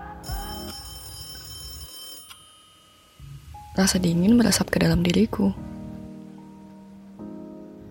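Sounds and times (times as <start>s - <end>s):
telephone ringing in a living room at home: 0.2s - 3.2s
speech: 3.8s - 5.6s.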